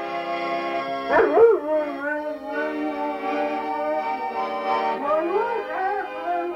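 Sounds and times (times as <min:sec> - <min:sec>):
sustained accordion chords: 0:00.0 - 0:06.5
dog howling and whimpering: 0:01.1 - 0:04.2, 0:05.0 - 0:06.5.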